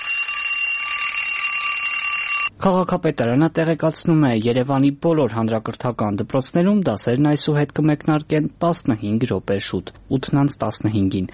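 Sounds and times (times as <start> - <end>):
alarm clock ringing: 0.0 - 2.5
speech: 2.6 - 11.3.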